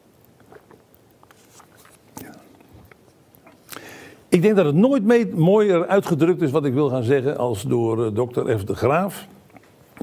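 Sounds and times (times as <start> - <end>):
person sipping a drink: 0.4 - 4.1
speech: 4.4 - 9.4.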